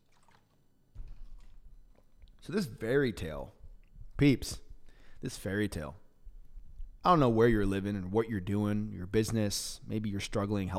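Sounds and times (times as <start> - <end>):
person gulping water with swallowing thuds: 0.0 - 2.4
speech: 2.4 - 3.6, 4.2 - 4.6, 5.2 - 6.0, 7.0 - 10.7.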